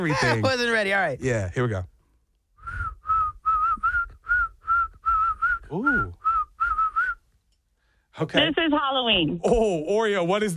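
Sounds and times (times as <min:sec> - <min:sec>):
speech: 0:00.0 - 0:01.9, 0:05.7 - 0:06.2, 0:08.2 - 0:10.5
person whistling a short bouncy tune: 0:02.6 - 0:07.2.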